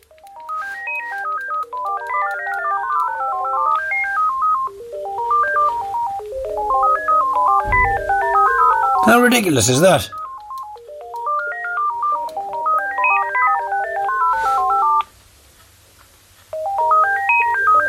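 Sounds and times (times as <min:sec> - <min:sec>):
cordless phone ringtone melody of electronic tones: 0:00.0 - 0:15.1, 0:16.6 - 0:17.8
low thump: 0:07.6 - 0:08.2
speech: 0:09.1 - 0:10.2.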